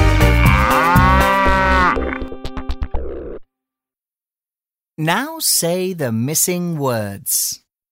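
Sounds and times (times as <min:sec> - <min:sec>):
cow mooing: 0:00.1 - 0:02.3
speech: 0:05.0 - 0:07.6.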